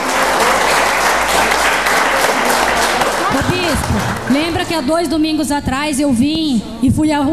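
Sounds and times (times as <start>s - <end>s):
crowd applauding the Lord: 0.0s - 5.1s
speech: 3.7s - 7.3s.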